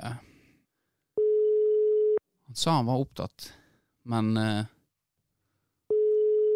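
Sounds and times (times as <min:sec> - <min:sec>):
electronic telephone ringing tone during a call: 0:01.2 - 0:02.2, 0:05.9 - 0:06.5
speech: 0:02.6 - 0:04.8.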